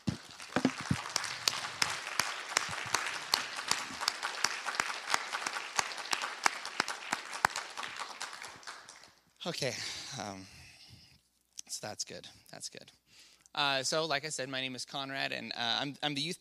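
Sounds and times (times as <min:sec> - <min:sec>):
room full of people applauding: 0:00.0 - 0:09.2
speech: 0:09.4 - 0:10.6, 0:11.8 - 0:13.0, 0:13.6 - 0:16.3.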